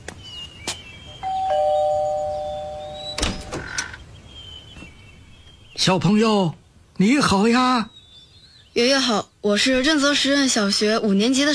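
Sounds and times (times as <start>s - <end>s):
doorbell pressed on arrival chiming a two-note ding-dong: 1.2s - 3.5s
speech: 5.8s - 7.9s, 8.8s - 11.5s.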